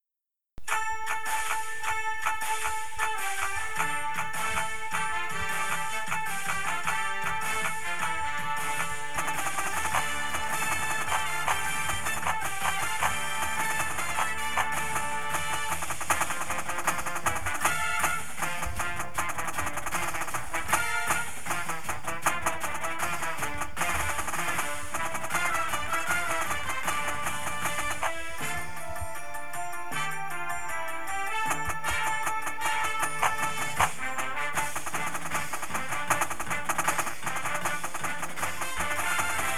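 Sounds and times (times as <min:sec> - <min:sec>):
snare drum: 0:00.6 - 0:39.5.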